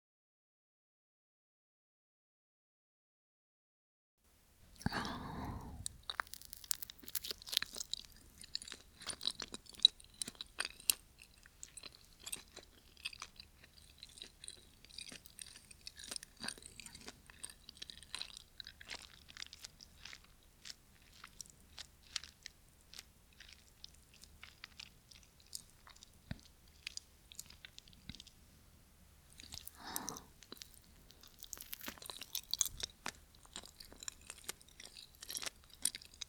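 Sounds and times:
chewing and eating sweet rice dumplings: 4.7s - 28.5s, 29.2s - 36.2s
breathy whisper-like sound: 4.8s - 6.0s, 29.8s - 30.3s.

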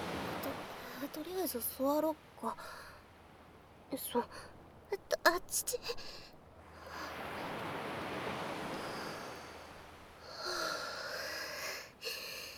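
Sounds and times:
ocean wave rushing up the beach: 0.0s - 1.2s, 6.8s - 11.3s
speech: 1.2s - 2.9s, 3.9s - 6.3s.

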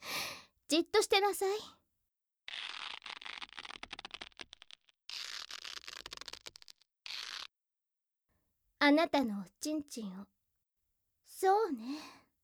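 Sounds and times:
speech: 0.7s - 1.8s, 8.8s - 10.4s, 11.4s - 12.2s
duct tape crackling rips off the roll: 2.5s - 7.6s.

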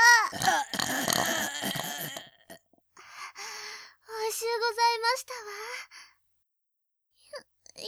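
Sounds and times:
tiny mouth sounds: 0.1s - 2.6s
long loud person burping: 0.2s - 2.6s
speech: 5.1s - 5.9s.

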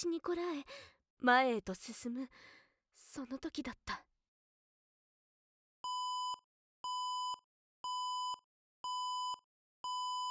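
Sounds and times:
speech: 0.0s - 4.1s
loud electronic alarm beeping: 5.9s - 10.3s.

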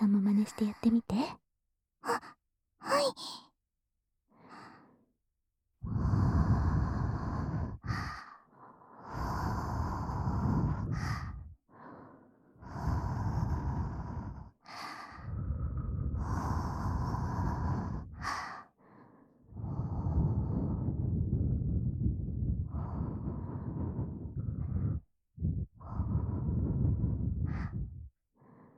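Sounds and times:
speech: 0.4s - 1.4s, 2.0s - 3.4s
long soft warm breaths blown into the ear: 5.8s - 28.7s.

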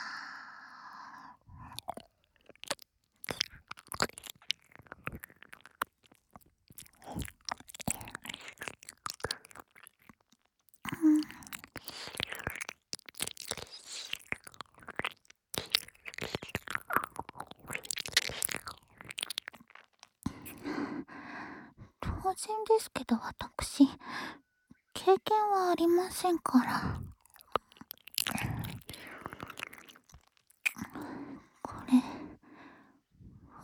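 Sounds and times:
wet mouth sounds of licking an ear: 1.6s - 20.7s, 26.1s - 32.0s
speech: 22.4s - 24.4s, 25.1s - 27.0s.

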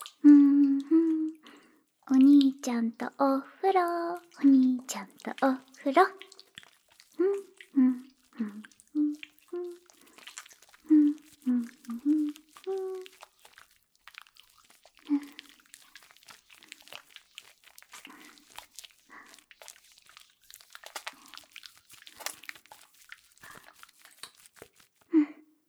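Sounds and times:
soap foam squishing and crackling worked up by hand: 0.0s - 0.3s, 1.0s - 25.2s
person making short sing-song sounds: 0.0s - 1.4s, 2.1s - 6.4s, 7.2s - 10.1s, 10.8s - 13.5s
speech: 2.6s - 6.3s.

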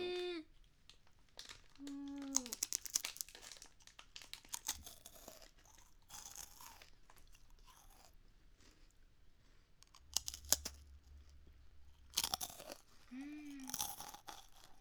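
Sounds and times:
short vocal sounds: 0.0s - 0.5s, 1.8s - 2.6s, 13.1s - 13.9s
crunchy coconut leaf pie pastry being eaten: 0.9s - 9.1s, 9.8s - 11.3s, 12.0s - 14.7s.

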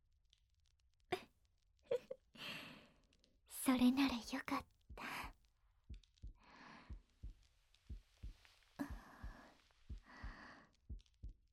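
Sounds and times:
speech: 3.6s - 4.7s
human heartbeat thumping: 4.9s - 11.5s.

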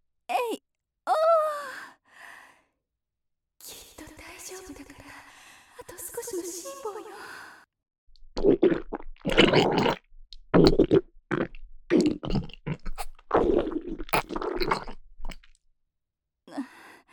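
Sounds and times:
speech: 6.3s - 7.6s, 8.4s - 9.0s
gurgling stomach rumbles of a woman holding back the urge to defecate: 8.3s - 15.6s.

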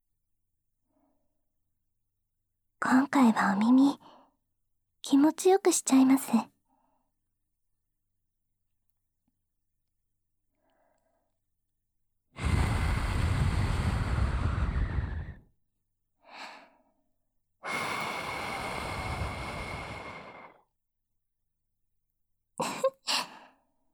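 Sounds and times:
speech: 2.9s - 4.1s, 5.1s - 6.5s
soft breaths blown into the ear: 12.4s - 15.5s, 17.6s - 20.6s.

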